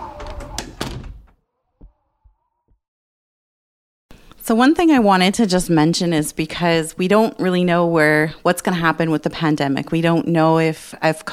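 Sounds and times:
door opening with metallic rattling and scraping: 0:00.0 - 0:01.4
soft door thuds as it settles: 0:00.0 - 0:02.0
speech: 0:04.5 - 0:11.3.

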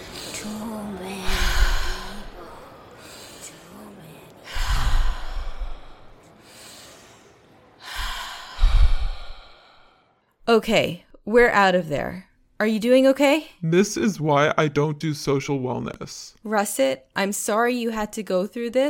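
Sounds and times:
deep breaths: 0:00.0 - 0:10.4
speech: 0:10.6 - 0:18.8.

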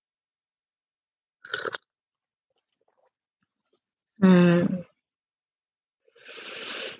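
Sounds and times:
slurping sips of tea from a cup: 0:01.4 - 0:01.9, 0:06.2 - 0:06.9
short voiced sigh: 0:04.2 - 0:04.8.

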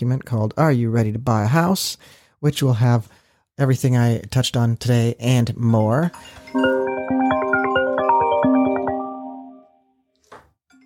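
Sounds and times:
speech: 0:00.0 - 0:06.7
melodic ringtone on a real estate agent's phone: 0:06.2 - 0:09.9.

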